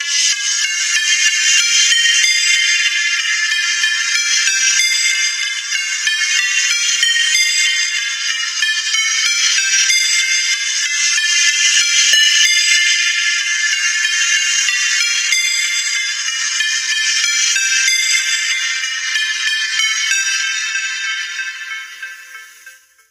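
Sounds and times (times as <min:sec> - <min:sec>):
Nokia stock phone ringtone: 0:00.5 - 0:23.0.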